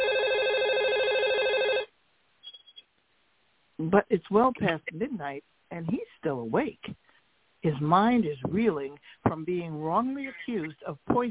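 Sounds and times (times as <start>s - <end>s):
phone ringing with a warbling trill: 0.0s - 2.8s
speech: 3.8s - 7.0s, 7.6s - 11.2s.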